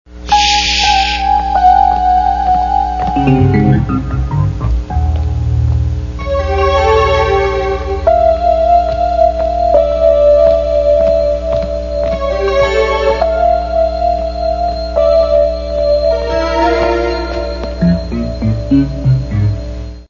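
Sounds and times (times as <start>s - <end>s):
music: 0.2s - 20.0s.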